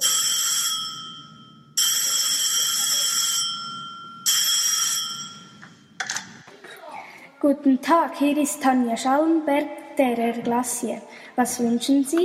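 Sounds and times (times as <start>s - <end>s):
telephone ringing: 0.0s - 6.3s
speech: 7.4s - 12.2s.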